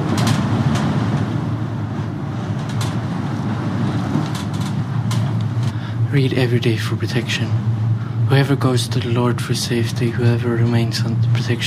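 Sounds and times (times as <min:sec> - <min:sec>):
faint brief clicks and creaks in a cable car: 0:00.0 - 0:01.4, 0:02.0 - 0:05.8
cable car rumbling while swaying over the ocean: 0:00.0 - 0:11.6
speech: 0:06.1 - 0:07.7, 0:08.3 - 0:11.6.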